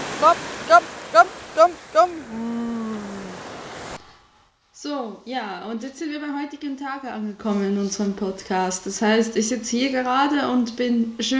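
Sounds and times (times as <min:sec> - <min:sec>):
ocean wave washing in: 0:00.0 - 0:04.0
speech: 0:00.2 - 0:02.8, 0:04.8 - 0:11.3.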